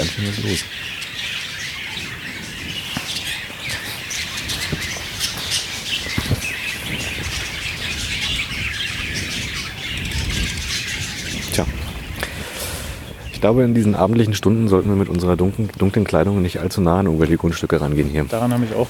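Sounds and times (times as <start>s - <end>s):
many caged birds chirping, tweeting and squawking in the evening: 0.0s - 18.8s
speech: 0.1s - 1.0s, 13.4s - 18.8s.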